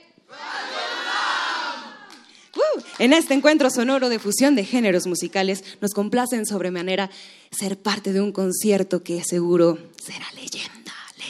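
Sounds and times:
live concert audience shouting in unison: 0.3 - 2.2
speech: 3.0 - 10.7.

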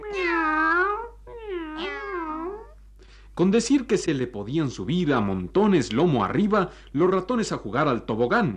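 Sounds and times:
cat meowing: 0.0 - 2.8
speech: 3.4 - 8.5.

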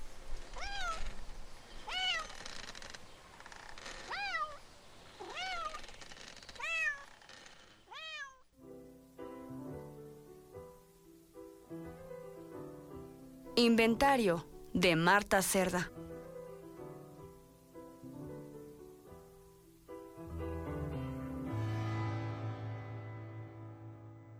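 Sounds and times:
cat meowing: 0.5 - 1.2, 1.8 - 2.5, 4.1 - 4.6, 5.2 - 7.2, 7.9 - 8.5
soft instrumental music: 8.6 - 24.3
speech: 13.6 - 16.0.

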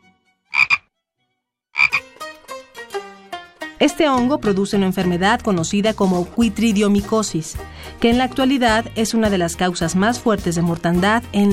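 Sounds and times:
American bullfrog croaking: 0.5 - 0.8, 1.8 - 2.0
speech: 3.8 - 11.5.

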